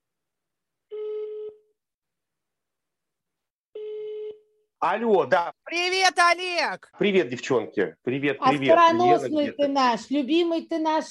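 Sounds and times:
buzzy telephone ringback tone as a call rings out: 0:00.9 - 0:01.7
speech: 0:04.8 - 0:11.0.

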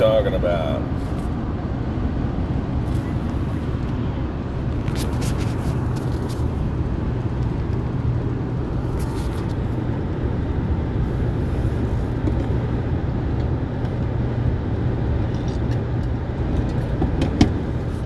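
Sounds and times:
speech: 0:00.0 - 0:01.3
Acura car engine and road noise heard from the cabin: 0:00.0 - 0:18.0.

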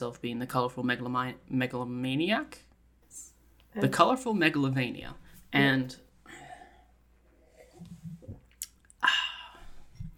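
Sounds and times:
speech: 0:00.0 - 0:06.4
person sipping a drink: 0:07.4 - 0:09.6
soft wet mouth sounds: 0:08.1 - 0:09.5.

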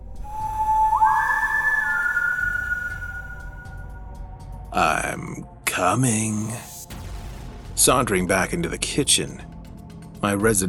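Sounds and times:
person whistling three sustained notes: 0:00.0 - 0:04.1
speech: 0:04.8 - 0:06.7, 0:07.8 - 0:09.5, 0:10.2 - 0:10.6.

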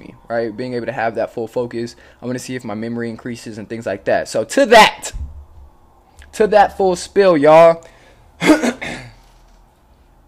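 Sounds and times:
speech: 0:00.3 - 0:05.2, 0:06.4 - 0:08.7
person coughing: 0:08.4 - 0:09.3.

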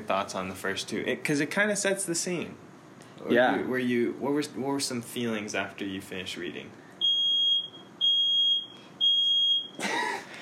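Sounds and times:
speech: 0:00.0 - 0:06.8
fire alarm beeping: 0:07.0 - 0:09.8.

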